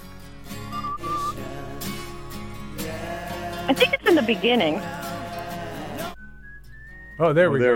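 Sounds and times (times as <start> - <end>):
whistled melody: 0.5 - 2.5, 6.1 - 7.7
speech: 3.7 - 5.0, 7.2 - 7.7.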